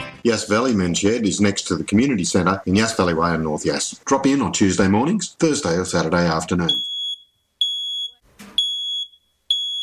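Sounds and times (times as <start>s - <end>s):
speech: 0.2s - 6.9s
smoke alarm beeping in shrill electronic beeps: 6.7s - 9.8s.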